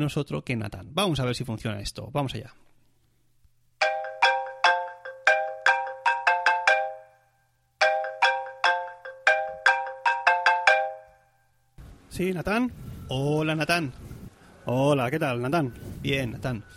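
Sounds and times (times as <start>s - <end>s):
speech: 0.0s - 2.6s, 12.2s - 16.7s
phone call ringing tone from a call to Zurich: 3.8s - 11.5s.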